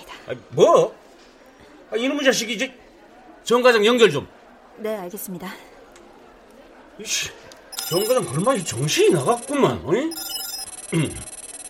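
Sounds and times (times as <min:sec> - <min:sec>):
speech: 0:00.2 - 0:01.0, 0:01.9 - 0:02.8, 0:03.4 - 0:05.7, 0:07.0 - 0:11.3
telephone ringing with fast electronic pulsing: 0:07.7 - 0:11.6.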